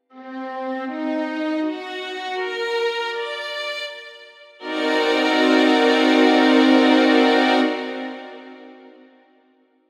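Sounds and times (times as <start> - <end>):
m7b5 chord: 0.2 - 9.6.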